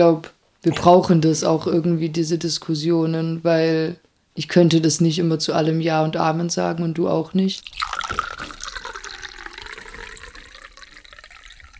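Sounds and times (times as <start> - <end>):
speech: 0.0 - 8.6
water drops dripping and trickling into a glass: 7.6 - 11.7.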